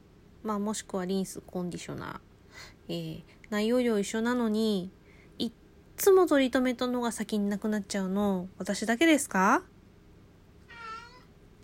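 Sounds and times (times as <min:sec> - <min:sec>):
faint hum: 0:00.0 - 0:11.6
speech: 0:00.4 - 0:09.7
cat meowing: 0:10.6 - 0:11.3.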